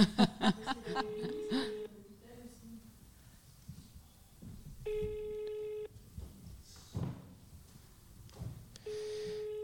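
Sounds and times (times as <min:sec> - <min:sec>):
laughter: 0:00.0 - 0:01.8
people talking: 0:00.4 - 0:03.0
telephone ringback tone for an unanswered call: 0:01.0 - 0:01.9, 0:04.9 - 0:05.9, 0:08.9 - 0:09.6.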